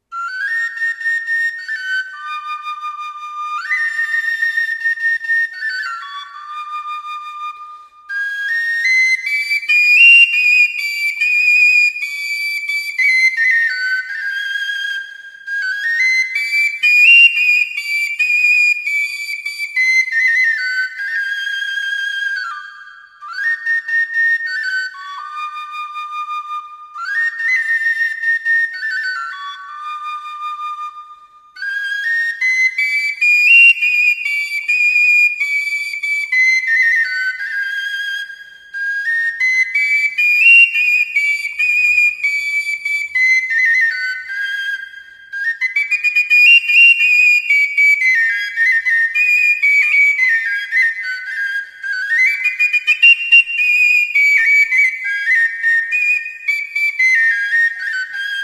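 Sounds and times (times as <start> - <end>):
melodic fujara whistle song: 0.0 - 58.4.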